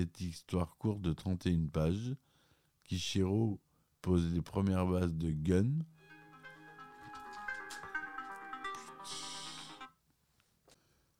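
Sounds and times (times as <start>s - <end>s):
speech: 0.0s - 2.3s, 2.9s - 6.0s
phone ringing with bright melodic electronic ringtone: 6.0s - 10.0s.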